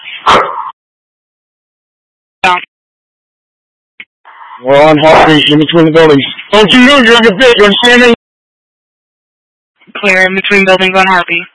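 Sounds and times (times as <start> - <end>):
dogs barking: 0.2 - 0.8
speech: 2.4 - 2.7, 4.6 - 8.2, 9.9 - 11.5.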